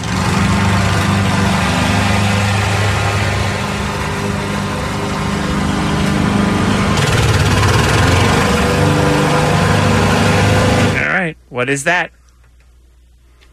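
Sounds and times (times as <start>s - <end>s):
lawn mower engine running: 0.0s - 11.1s
speech: 11.6s - 12.2s.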